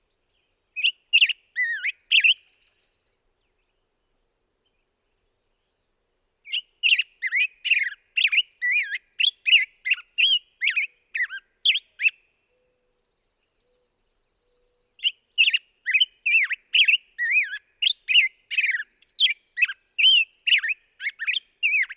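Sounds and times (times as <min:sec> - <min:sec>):
black-headed grosbeak song of rich warbled whistled phrases: 0:00.1 - 0:03.8, 0:06.4 - 0:21.9.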